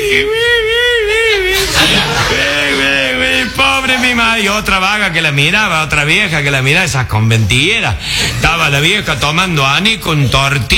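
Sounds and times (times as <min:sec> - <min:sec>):
speech: 0:00.0 - 0:00.4, 0:03.9 - 0:10.7
person imitating the wailing sobs of a widow crying at a wake: 0:00.0 - 0:04.1
laughter: 0:00.2 - 0:05.1.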